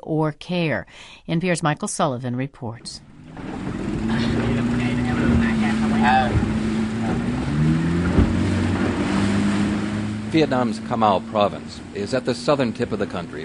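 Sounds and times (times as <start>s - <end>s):
speech: 0.1s - 4.3s, 10.3s - 13.4s
motorboat engine droning on waterways of Cà Mau province: 2.8s - 13.4s
water splashing: 2.8s - 13.4s
wind: 3.0s - 13.4s.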